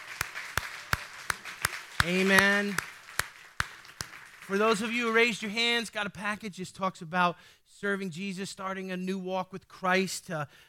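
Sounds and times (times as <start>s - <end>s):
scattered applause: 0.0s - 5.5s
church audience clapping in praise at a morning service: 0.0s - 6.0s
speech: 2.0s - 2.9s, 4.5s - 10.6s.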